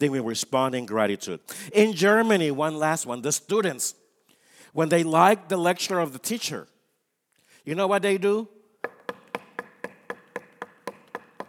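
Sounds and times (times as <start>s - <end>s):
speech: 0.0s - 4.0s, 4.7s - 6.7s, 7.6s - 8.6s
knocking on wooden desk: 8.8s - 11.4s.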